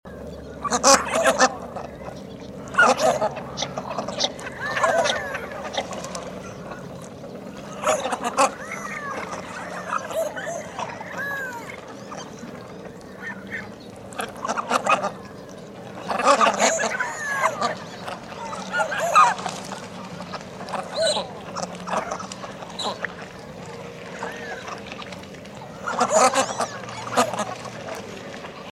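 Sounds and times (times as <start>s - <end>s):
canvasback: 0.6s - 6.9s, 7.5s - 12.5s, 13.1s - 15.2s, 16.0s - 25.0s, 25.6s - 28.1s.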